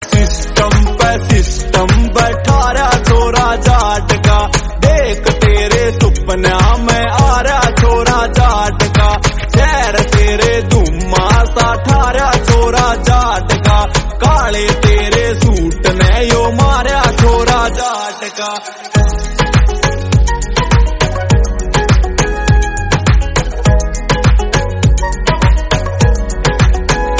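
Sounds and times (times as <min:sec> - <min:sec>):
Haryanvi song ringtone: 0:00.1 - 0:27.1.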